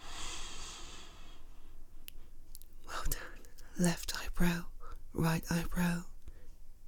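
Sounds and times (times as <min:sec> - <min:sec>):
person inhaling during a guided calming exercise: 0:00.0 - 0:01.8
speech: 0:03.8 - 0:06.1.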